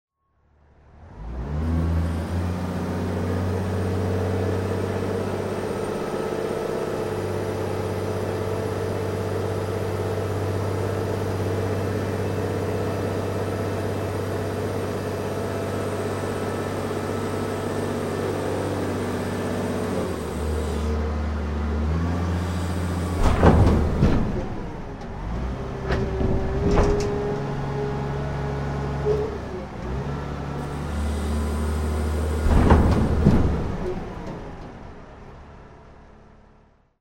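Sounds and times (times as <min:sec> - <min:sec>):
industrial container yard ambience: 0:00.8 - 0:36.9.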